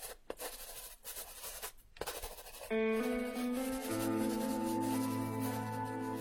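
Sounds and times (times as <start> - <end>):
pen scratching on paper: 0.0 - 2.7, 3.7 - 6.2
steady musical tone: 2.7 - 6.2.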